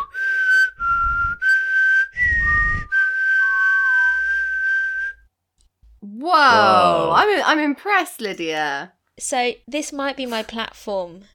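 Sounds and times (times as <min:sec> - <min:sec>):
person whistling: 0:00.0 - 0:05.3
speech: 0:06.3 - 0:11.3.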